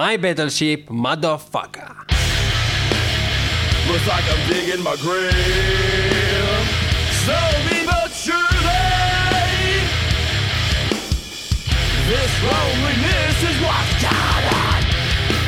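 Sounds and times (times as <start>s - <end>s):
speech: 0.0s - 2.2s, 3.8s - 6.2s, 7.2s - 8.8s, 12.1s - 14.7s
heavy distorted guitars: 1.9s - 15.4s
pounding bass and drums: 2.1s - 15.4s
strained shouted rock vocal: 5.4s - 10.0s, 11.9s - 15.1s.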